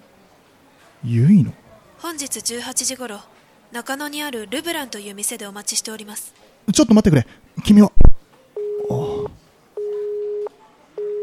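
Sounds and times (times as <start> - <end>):
speech: 1.0 - 7.9
telephone busy tone beeps after a hang-up: 8.6 - 11.2
voice fragment: 8.8 - 9.4.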